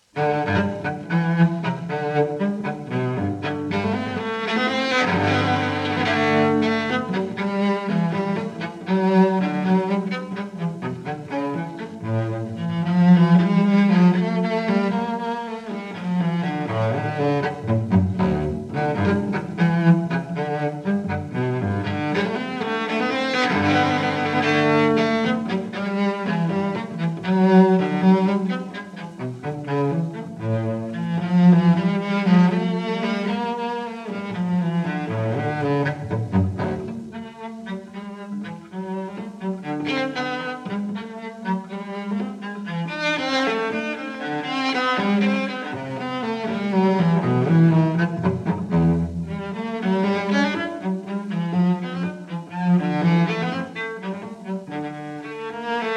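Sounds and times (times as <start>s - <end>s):
live solo cello piece: 0.0s - 55.9s.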